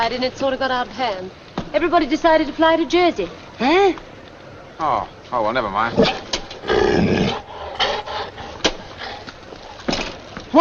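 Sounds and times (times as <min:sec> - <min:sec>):
speech: 0:00.0 - 0:04.1, 0:04.8 - 0:07.4
female dog growling: 0:05.9 - 0:09.3.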